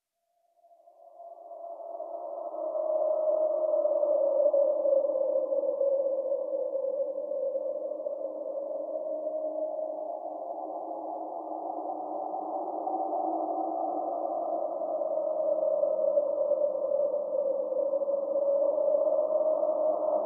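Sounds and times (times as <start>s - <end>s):
eerie wind: 0.8s - 20.2s.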